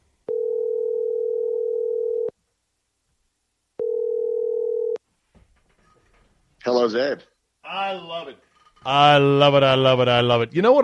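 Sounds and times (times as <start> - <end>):
electronic telephone tone heard through a handset: 0.3 - 2.3, 3.8 - 5.0
speech: 6.8 - 10.8.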